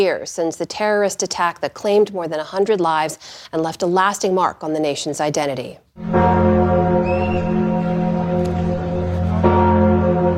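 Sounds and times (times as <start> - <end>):
speech: 0.0 - 7.6
Notre-Dame Cathedral church bells ringing: 6.0 - 10.3.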